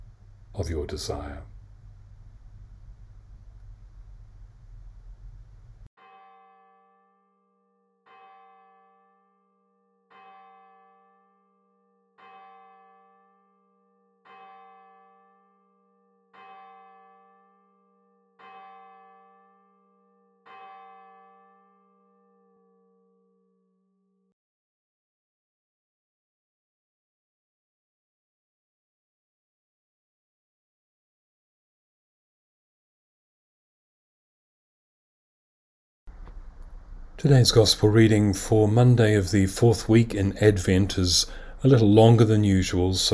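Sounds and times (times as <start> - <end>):
resonant bell ringing: 0.0 - 5.9
steady broadband noise: 0.0 - 5.9, 36.1 - 43.1
speech: 0.6 - 1.6, 37.2 - 43.1.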